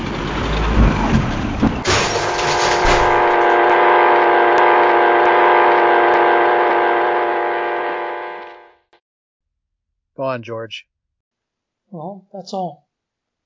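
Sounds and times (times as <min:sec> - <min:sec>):
truck crashing with heavy booming impacts and shattering: 0:00.0 - 0:03.7
steady blaring roar after a truck crash: 0:00.0 - 0:08.8
speech: 0:10.2 - 0:10.9, 0:11.9 - 0:12.8.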